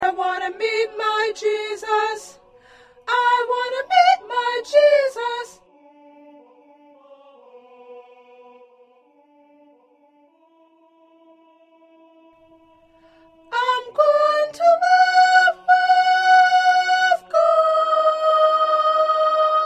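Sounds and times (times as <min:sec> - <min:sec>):
second soprano singing: 0:00.0 - 0:06.5, 0:13.3 - 0:19.6.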